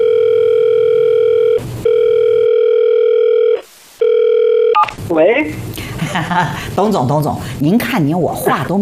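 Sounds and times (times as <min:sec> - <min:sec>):
steady telephone dial tone: 0:00.0 - 0:04.9
speech: 0:05.2 - 0:08.8.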